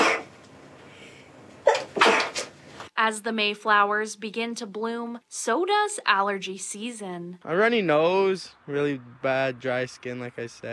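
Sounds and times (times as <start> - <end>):
people sneezing during allergy season: 0.0 - 0.3, 1.6 - 2.6
speech: 3.0 - 10.7.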